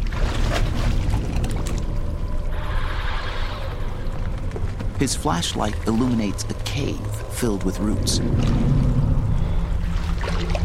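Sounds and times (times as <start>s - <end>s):
water sloshing as a person steps into ankle-deep water in a cave: 0.0s - 10.6s
speech: 5.0s - 8.9s.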